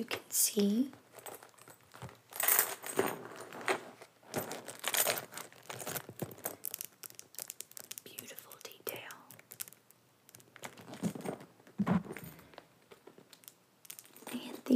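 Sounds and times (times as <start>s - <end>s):
speech: 0.0s - 1.0s
soft handling rustles of a bag: 0.9s - 14.7s
small gold chain on a purse strap jingling: 1.2s - 3.0s
person whispering: 8.0s - 9.4s, 14.3s - 14.7s.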